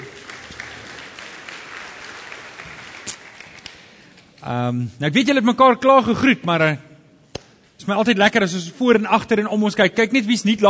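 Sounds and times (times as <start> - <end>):
audience applauding an orchestra: 0.0 - 4.2
speech: 4.4 - 6.9, 7.9 - 10.6.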